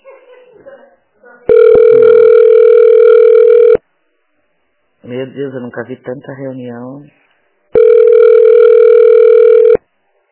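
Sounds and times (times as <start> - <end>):
steady electronic telephone tone of an unanswered call: 1.5 - 3.8, 7.8 - 9.8
speech: 5.1 - 7.3.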